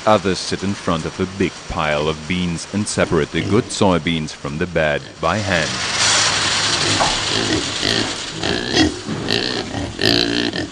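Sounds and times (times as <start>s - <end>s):
speech: 0.0s - 6.0s, 6.9s - 10.3s
steady noisy background: 0.0s - 10.6s
pigs fed on bad soybeans grunting and oinking: 2.9s - 10.6s.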